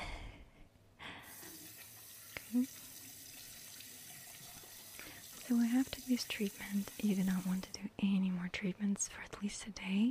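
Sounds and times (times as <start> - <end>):
tap water running into a sink during washing: 1.3 - 7.8
speech: 2.5 - 2.8, 5.5 - 10.1.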